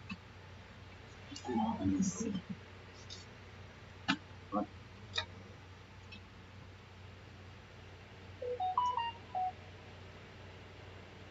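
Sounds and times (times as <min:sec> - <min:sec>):
low hum: 0:00.0 - 0:11.2
short electronic phone beeps: 0:08.4 - 0:09.6.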